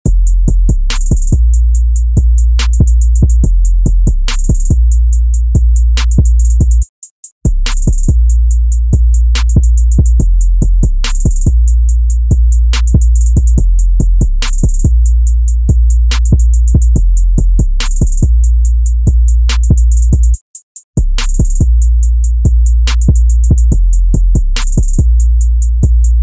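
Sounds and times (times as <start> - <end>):
808 kick boom bass: 0.1 - 6.8, 8.9 - 18.5, 19.1 - 20.4, 21.0 - 26.2
hi-hat rolls in a 140 bpm trap loop: 0.2 - 4.8, 7.7 - 8.4, 9.3 - 15.3, 15.9 - 18.6, 19.5 - 20.4, 21.2 - 26.2.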